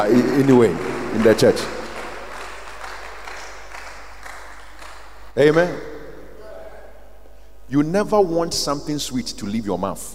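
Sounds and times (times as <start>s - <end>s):
speech: 0.0s - 1.8s, 5.4s - 5.9s, 7.7s - 10.1s
crowd applauding: 0.0s - 5.8s.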